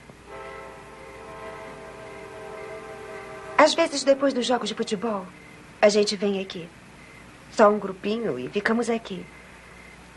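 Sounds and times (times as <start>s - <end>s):
train horn blast: 0.2s - 5.4s
speech: 3.6s - 6.8s, 7.5s - 9.4s.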